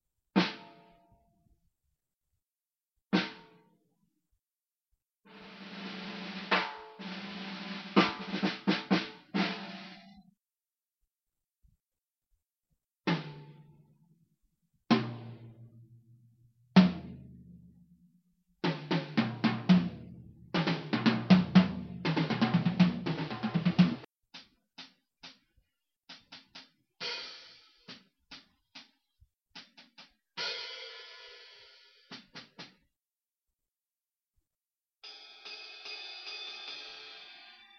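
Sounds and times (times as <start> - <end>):
drum kit: 0.3 - 0.9, 3.1 - 3.7, 5.3 - 10.3, 13.0 - 13.8, 14.9 - 17.8, 18.6 - 32.9, 35.0 - 37.7.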